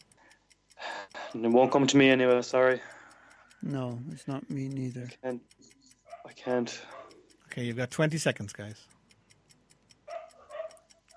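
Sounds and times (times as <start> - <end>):
soft regular ticking: 0.0 - 11.1
speech: 1.3 - 3.0, 3.6 - 7.0, 7.6 - 9.0
dog barking: 6.0 - 7.3, 10.1 - 10.9.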